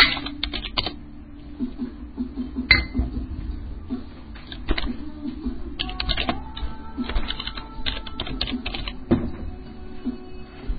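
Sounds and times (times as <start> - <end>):
low hum: 0.0 - 10.7
typing on an Austrian computer keyboard: 0.1 - 1.0, 5.8 - 6.4, 7.0 - 9.0.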